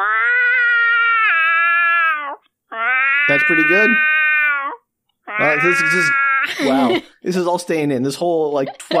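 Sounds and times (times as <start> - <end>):
person imitating an angry cat yowling: 0.0 - 6.9
speech: 3.3 - 4.1, 5.4 - 8.9.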